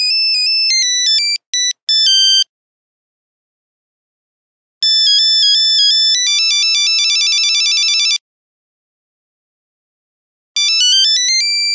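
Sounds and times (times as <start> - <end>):
Nokia 3410 buzzer: 0.2 - 2.5, 4.8 - 8.2, 10.6 - 11.7.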